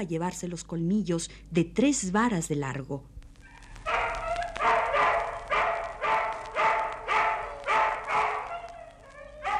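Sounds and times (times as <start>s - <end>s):
speech: 0.0s - 3.1s
dogs barking: 3.4s - 9.5s.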